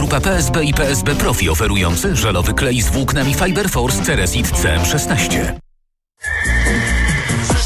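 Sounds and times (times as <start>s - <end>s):
speech: 0.0s - 5.6s
horse neighing: 6.2s - 7.5s.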